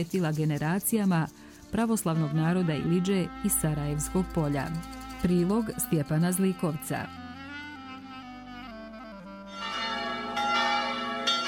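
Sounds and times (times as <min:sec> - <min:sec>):
speech: 0:00.0 - 0:07.3
church bells ringing in a steady peal: 0:09.5 - 0:11.4.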